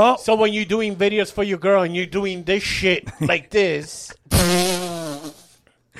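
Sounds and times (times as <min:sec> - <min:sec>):
speech: 0:00.0 - 0:04.7
long buzzy fart: 0:04.3 - 0:05.6.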